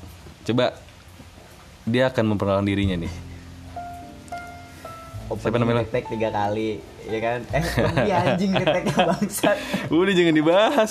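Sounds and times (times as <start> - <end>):
light drizzling rain: 0.0 - 10.8
speech: 0.5 - 0.9, 1.8 - 3.2, 5.3 - 10.8
laughter: 7.6 - 10.8.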